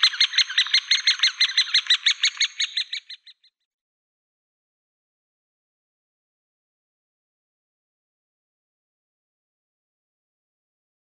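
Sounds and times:
great spotted woodpecker nestlings harsh chattering calls: 0.0 - 3.2.

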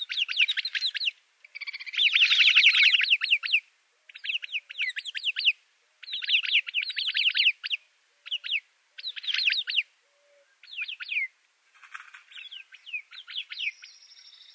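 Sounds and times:
Arabian babbler chattering calls: 0.0 - 9.8, 10.6 - 14.5.

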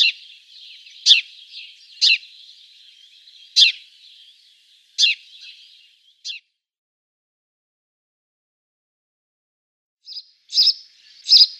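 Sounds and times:
house sparrow chirping: 0.0 - 6.4, 10.1 - 11.5.

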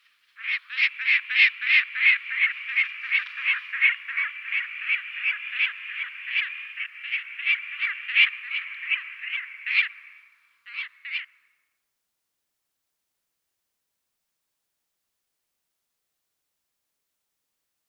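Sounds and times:
Lanner falcon calling grating kek notes: 0.4 - 11.3.

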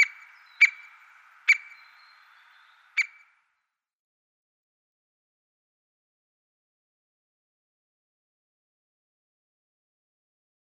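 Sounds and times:
White-backed woodpecker calls: 0.0 - 3.4.

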